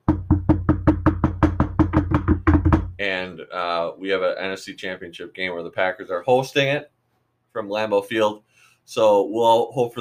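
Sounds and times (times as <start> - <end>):
knuckles knocking on a wooden surface: 0.0 - 3.0
speech: 3.3 - 7.0, 7.6 - 9.9.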